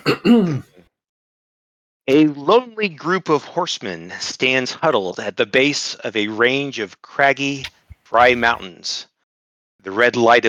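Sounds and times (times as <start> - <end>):
person clearing throat: 0.0 - 0.7, 7.8 - 8.6
speech: 0.0 - 0.7, 2.1 - 9.1, 9.8 - 10.4.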